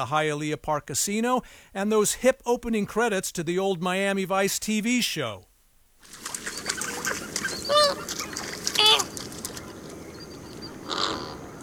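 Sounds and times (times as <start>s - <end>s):
speech: 0.0s - 6.5s
flamingo honking calls: 6.2s - 11.6s
many birds chattering: 6.2s - 11.6s.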